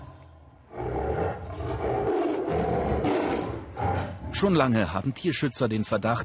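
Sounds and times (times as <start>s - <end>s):
tiger raised by monks at a temple roaring: 0.7s - 4.5s
speech: 4.4s - 6.2s.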